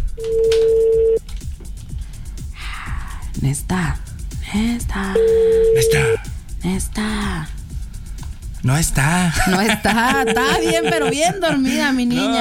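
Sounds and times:
speech: 0.2 - 0.4, 3.4 - 7.6, 8.6 - 12.4
telephone ringback tone of a call: 0.2 - 1.2, 5.2 - 6.2
laughter: 9.3 - 12.4.

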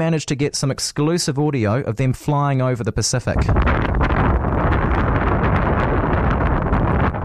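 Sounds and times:
speech: 0.0 - 3.9
strong wind buffeting the microphone: 3.2 - 7.2.

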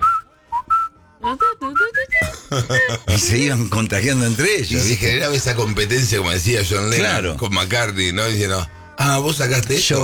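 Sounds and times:
person whistling a short bright melody: 0.0 - 3.0
speech: 1.3 - 1.8, 2.5 - 10.0
laughter: 2.1 - 5.5.

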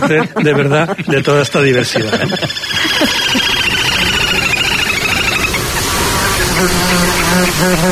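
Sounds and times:
speech: 0.0 - 3.9, 6.6 - 7.9
laughter: 0.0 - 5.3
mosquitoes buzzing around the microphone: 1.6 - 7.9.

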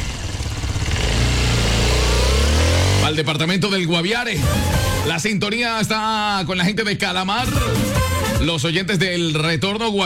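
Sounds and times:
motorcycle engine revving: 0.0 - 3.4
speech: 3.1 - 10.0.

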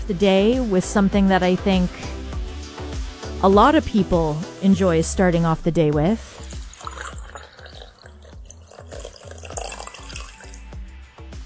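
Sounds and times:
speech: 0.1 - 2.2, 3.4 - 6.4
coffee pouring into a cup: 6.2 - 10.8.

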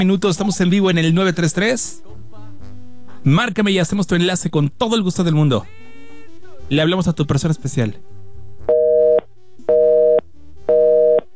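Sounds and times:
speech: 0.0 - 2.2, 3.2 - 5.8, 6.7 - 8.2
telephone busy signal: 8.7 - 11.3.

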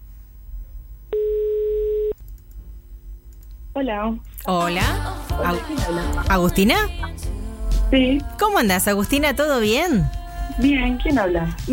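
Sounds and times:
faint hum: 0.0 - 11.7
telephone ringback tone on an outgoing call: 1.1 - 2.2
speech: 3.8 - 11.7.

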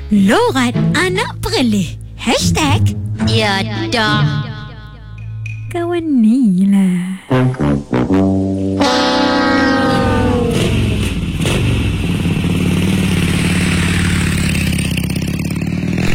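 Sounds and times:
speech: 0.1 - 4.4, 5.7 - 7.9
motorcycle engines revving, ridden by kids at dusk: 8.8 - 16.1.

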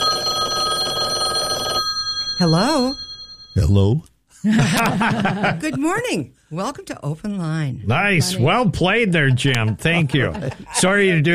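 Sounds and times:
telephone ringing with bright electronic tone: 0.0 - 3.7
speech: 2.4 - 3.0, 3.6 - 11.3
laughter: 4.4 - 6.1, 9.2 - 11.3.

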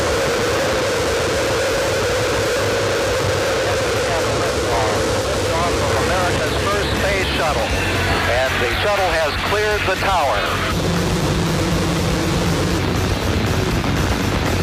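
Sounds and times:
space shuttle Columbia main engines roaring at liftoff: 0.0 - 14.6
faint garbled radio-style voices: 3.5 - 10.7.

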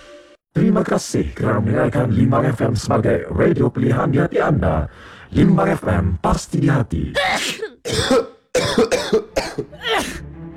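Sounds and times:
speech: 0.8 - 9.2
person coughing harshly: 7.2 - 10.2.

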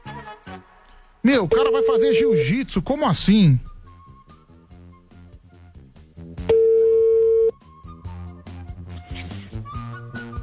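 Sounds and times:
speech: 1.2 - 3.7
telephone ringing tone while placing a call: 1.5 - 2.7, 6.5 - 7.5.

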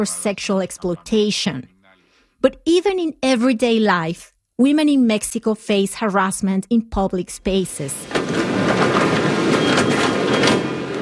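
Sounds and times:
speech: 0.0 - 1.7, 2.4 - 9.0
subway train rumbling and hissing at a station in Mexico City: 8.0 - 11.0.

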